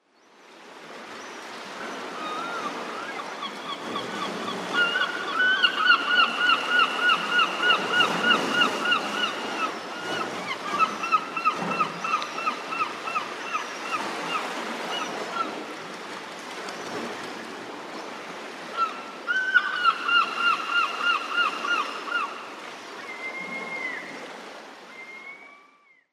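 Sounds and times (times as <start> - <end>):
European herring gulls calling: 1.8 - 15.6, 18.6 - 24.2.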